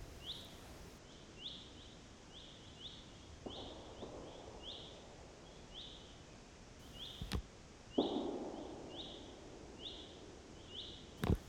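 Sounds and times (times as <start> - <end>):
small birds chirping in a quiet forest: 0.0 - 11.4
capercaillie landing thumps: 6.9 - 7.4, 11.2 - 11.4.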